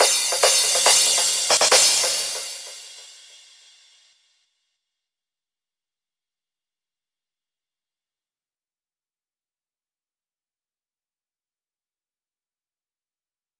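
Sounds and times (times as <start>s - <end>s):
pitched crash cymbal mix at 140 BPM: 0.0s - 4.2s.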